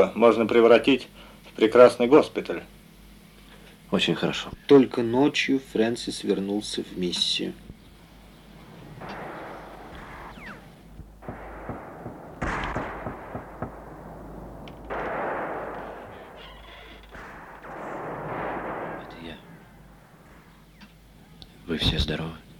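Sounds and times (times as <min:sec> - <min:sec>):
speech: 0:00.0 - 0:02.8, 0:03.9 - 0:07.7
steady rumbling noisy background: 0:00.0 - 0:22.5
gunfire from gangs looting locked shops: 0:08.5 - 0:21.1.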